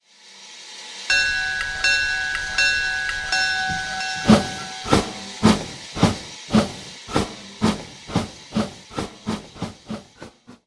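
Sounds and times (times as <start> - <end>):
steam: 0.0 - 10.6
bell: 1.1 - 5.8.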